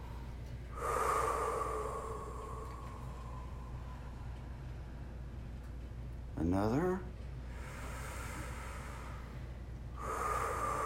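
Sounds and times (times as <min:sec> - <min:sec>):
long deep breath during a guided relaxation exercise: 0:00.0 - 0:05.2, 0:07.4 - 0:10.8
speech: 0:06.4 - 0:07.1.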